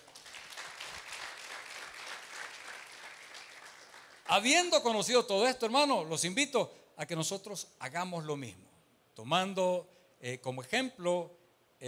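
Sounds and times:
audience applauding during a sermon: 0:00.0 - 0:04.3
speech: 0:04.3 - 0:11.8.

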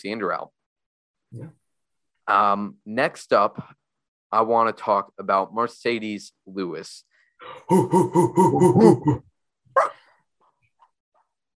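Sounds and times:
speech: 0:00.0 - 0:00.6, 0:01.3 - 0:01.6, 0:02.3 - 0:09.9
person imitating a dog barking: 0:07.5 - 0:09.2, 0:09.8 - 0:10.0.

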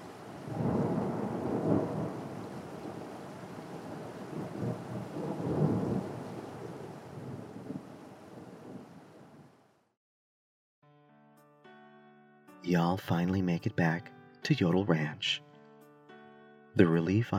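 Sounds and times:
deep thunder rumbling: 0:00.0 - 0:09.6
steady rain: 0:00.0 - 0:09.8
speech: 0:12.7 - 0:15.5, 0:16.8 - 0:17.3.

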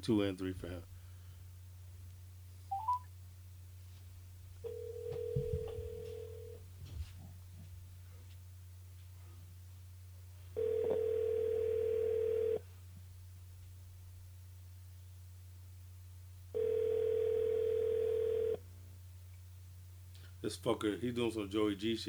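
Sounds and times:
speech: 0:00.0 - 0:00.9, 0:20.5 - 0:22.0
low constant hum: 0:00.0 - 0:22.0
long steady phone ringback tones: 0:02.7 - 0:03.1, 0:04.6 - 0:06.6, 0:10.6 - 0:12.6, 0:16.6 - 0:18.6
short phone line beep: 0:02.7 - 0:03.1.

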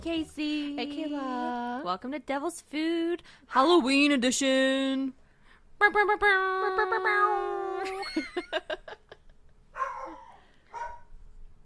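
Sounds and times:
speech: 0:00.0 - 0:05.2, 0:05.8 - 0:08.9
dogs howling, barking and yapping: 0:09.8 - 0:11.0.

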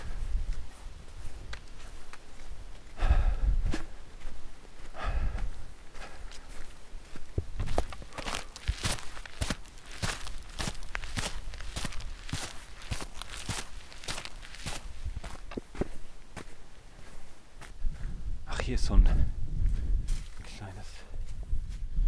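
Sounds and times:
footsteps on a forest path at night: 0:00.0 - 0:18.2, 0:19.6 - 0:21.9
rustling: 0:07.6 - 0:15.9.

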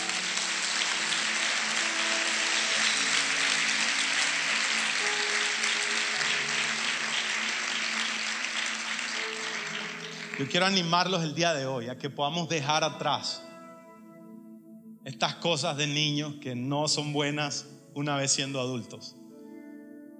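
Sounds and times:
crowd clapping: 0:00.0 - 0:11.2
faint tonal notes, possibly music: 0:00.0 - 0:20.1
speech: 0:10.4 - 0:13.4, 0:15.2 - 0:19.2.

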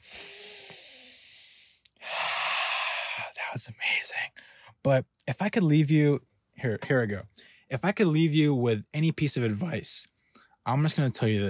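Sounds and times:
strong breathy gust of breath: 0:00.0 - 0:03.3
deep breath: 0:00.0 - 0:03.4, 0:04.4 - 0:04.8, 0:07.4 - 0:07.7
speech: 0:03.5 - 0:11.4.

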